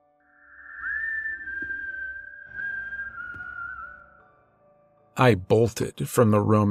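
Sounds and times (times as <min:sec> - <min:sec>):
eerie drawn-out whistle: 0:00.0 - 0:04.7
speech: 0:05.2 - 0:06.7.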